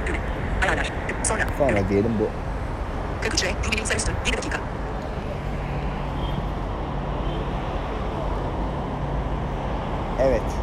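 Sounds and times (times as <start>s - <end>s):
passing street traffic at a bus stop: 0.0s - 10.6s
speech: 1.6s - 2.5s, 3.2s - 4.9s, 10.2s - 10.6s.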